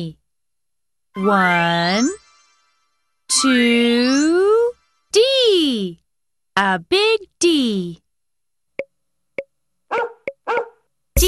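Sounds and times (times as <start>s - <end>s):
speech: 0.0s - 0.2s, 1.2s - 2.2s, 3.3s - 6.0s, 6.6s - 8.0s, 9.9s - 10.6s
dog barking: 9.9s - 10.9s.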